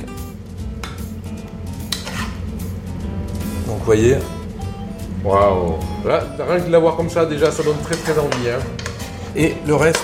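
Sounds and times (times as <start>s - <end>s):
low steady hum: 0.0s - 10.0s
utensil scraping and clinking on dishes while serving truffade onto a plate: 1.9s - 2.4s, 7.4s - 10.0s
speech: 3.8s - 4.4s, 5.2s - 10.0s
sharp clatters of dishes: 7.4s - 10.0s.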